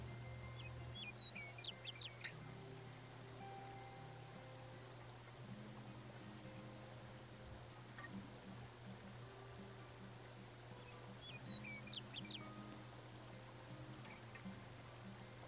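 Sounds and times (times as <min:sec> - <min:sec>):
songbird singing on the branch of a tall tree: 0:00.0 - 0:06.6, 0:10.2 - 0:15.4
steady low hum of noise: 0:00.0 - 0:15.4.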